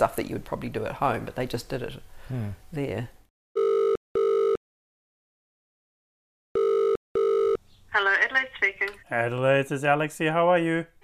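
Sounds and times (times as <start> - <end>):
speech: 0.0 - 3.2, 7.9 - 11.0
telephone ringback tone double burst: 3.6 - 4.6, 6.6 - 7.6.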